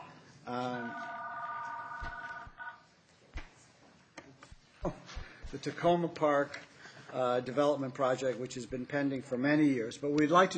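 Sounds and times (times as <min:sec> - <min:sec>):
low noise: 0:00.0 - 0:10.5
phone ringing with a buzzy electronic tone during a community planning meeting: 0:00.6 - 0:02.9
speech: 0:04.8 - 0:10.5.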